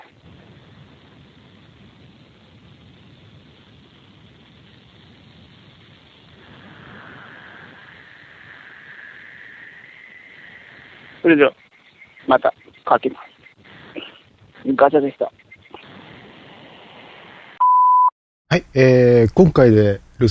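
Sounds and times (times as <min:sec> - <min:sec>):
higurashi cicadas calling in a continuous chorus outdoors on a fine morning: 0:06.4 - 0:16.8
speech: 0:11.3 - 0:11.6, 0:12.3 - 0:13.3, 0:14.7 - 0:15.4, 0:18.8 - 0:20.2.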